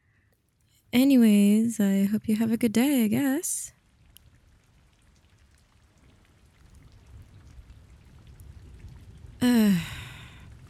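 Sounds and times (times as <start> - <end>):
steady rain pattering: 0.1 - 10.6
speech: 0.9 - 3.8
person letting out a loud drawn-out sigh: 9.4 - 10.5.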